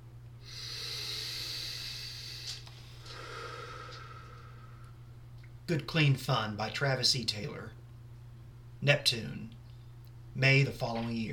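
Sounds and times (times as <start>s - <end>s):
steady low hum: 0.0s - 11.3s
deep breath inhale: 0.4s - 5.0s
speech: 5.7s - 7.8s, 8.8s - 9.6s, 10.4s - 11.3s.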